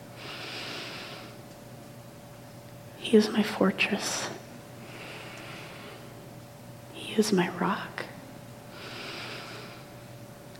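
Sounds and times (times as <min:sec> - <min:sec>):
person breathing slowly in and out: 0:00.2 - 0:01.4, 0:04.8 - 0:06.1, 0:08.7 - 0:10.0
speech: 0:03.0 - 0:04.4, 0:07.2 - 0:08.0.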